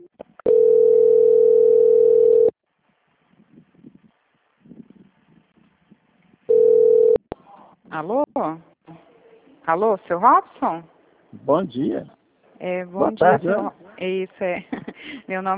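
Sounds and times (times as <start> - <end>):
telephone line tone during a call transfer: 0.5 - 2.5, 6.5 - 7.2
speech: 8.0 - 8.7, 9.7 - 15.5.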